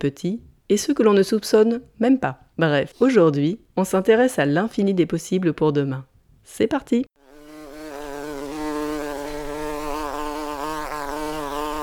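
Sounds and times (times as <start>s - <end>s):
speech: 0.0s - 7.1s
many bees buzzing around a hive: 7.2s - 11.8s.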